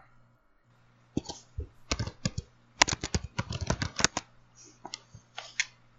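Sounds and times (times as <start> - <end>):
typing on a keyboard to look something up: 1.9 - 4.2.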